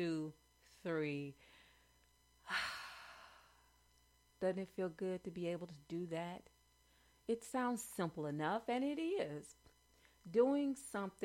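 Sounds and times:
speech: 0.0s - 1.5s, 4.4s - 6.5s, 7.3s - 11.2s
deep breath: 1.4s - 3.8s.

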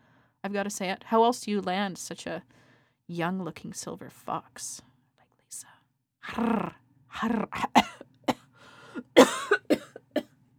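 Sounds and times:
speech: 0.4s - 4.9s, 5.5s - 7.9s, 9.2s - 9.4s
person clearing their throat: 7.4s - 8.4s, 9.0s - 10.3s
person coughing: 7.5s - 8.4s, 9.0s - 10.3s.

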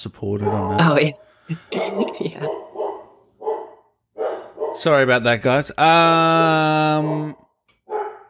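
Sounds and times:
speech: 0.0s - 2.7s, 4.8s - 7.4s
dog barking: 0.4s - 1.0s, 1.7s - 4.9s, 7.8s - 8.2s.

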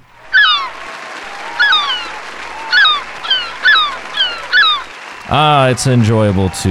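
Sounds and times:
shrill nasal seagull squawks: 0.0s - 6.3s
laughter: 0.0s - 6.6s
speech: 5.3s - 6.6s.

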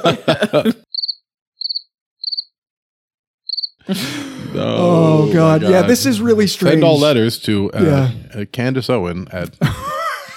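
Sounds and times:
speech: 0.0s - 0.8s, 3.9s - 9.9s
laughter: 0.0s - 0.9s, 3.9s - 8.3s, 9.4s - 10.3s
crickets chirping: 0.9s - 2.5s, 3.5s - 3.8s.

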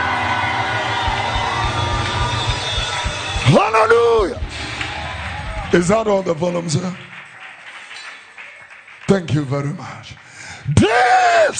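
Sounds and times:
low rumbling pulses: 0.0s - 7.2s
large church audience screaming and cheering: 0.0s - 9.0s
speech: 3.5s - 4.4s, 5.7s - 7.1s, 9.1s - 11.5s.

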